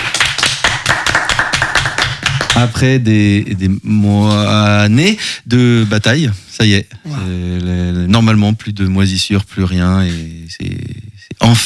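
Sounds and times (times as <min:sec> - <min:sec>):
steady rhythmic clapping: 0:00.0 - 0:03.0
speech: 0:02.6 - 0:11.6.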